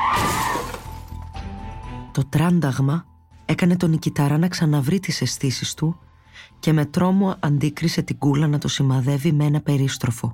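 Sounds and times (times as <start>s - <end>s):
shrill squeal of skidding car: 0.0s - 0.8s
car skidding and crashing into a tree: 0.0s - 1.3s
shattering debris: 0.0s - 1.4s
speech: 2.2s - 10.3s.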